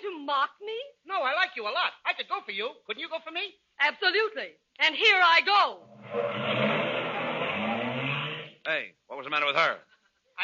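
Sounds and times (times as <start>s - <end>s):
speech: 0.3s - 6.8s, 8.7s - 10.4s
car engine revving: 5.8s - 8.6s.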